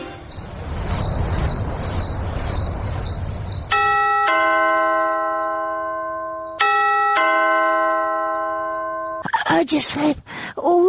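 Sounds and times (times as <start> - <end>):
insect-like chirping: 0.2 - 4.1, 5.0 - 6.6, 8.3 - 9.4
house doorbell two-tone ding-dong chime: 3.7 - 9.3
speech: 9.9 - 10.8.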